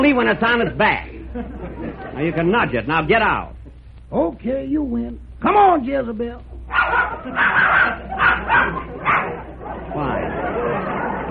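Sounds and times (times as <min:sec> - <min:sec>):
speech: 0:00.0 - 0:06.5, 0:07.2 - 0:08.8
laughter: 0:01.1 - 0:02.7, 0:06.8 - 0:11.2
dog barking and whimpering: 0:06.7 - 0:09.5.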